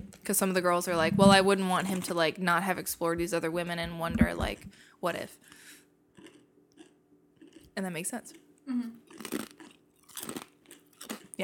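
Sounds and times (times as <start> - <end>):
speech: 0.3 - 5.6, 7.8 - 9.3
wet crunchy chewing of food: 9.1 - 11.4.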